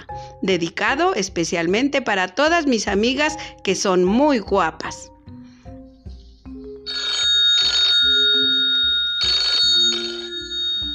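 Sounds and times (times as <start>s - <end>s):
speech: 0.4s - 5.1s
telephone ringing with bright buzzy trills: 6.9s - 10.9s.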